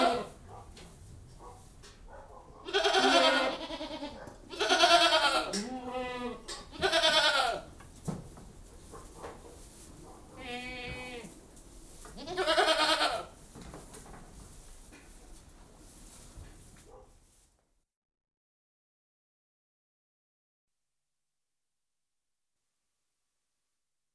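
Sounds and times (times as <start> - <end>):
goats bleating in a goat house: 0.0 - 0.4, 2.6 - 7.7, 10.4 - 11.3, 12.2 - 13.3
rustling and shuffling in a goat house: 0.0 - 2.6, 6.4 - 17.8.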